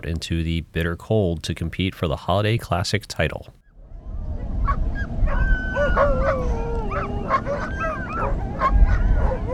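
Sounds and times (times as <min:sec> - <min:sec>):
speech: 0:00.0 - 0:03.6
crowd of sled dogs barking, yipping and whining in bitter cold before a race: 0:04.3 - 0:09.5.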